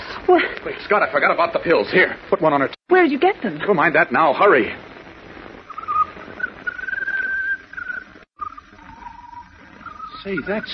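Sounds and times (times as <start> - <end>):
low hiss: 0.0 - 10.7
speech: 0.3 - 4.9, 10.2 - 10.7
bird singing a peculiar song of thin wavering whistles: 5.6 - 10.7.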